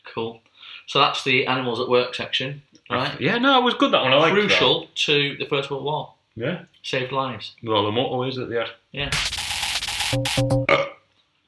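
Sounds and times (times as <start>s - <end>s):
speech: 0.2s - 9.4s, 10.1s - 10.8s
long loud gurgling burp: 10.6s - 11.1s.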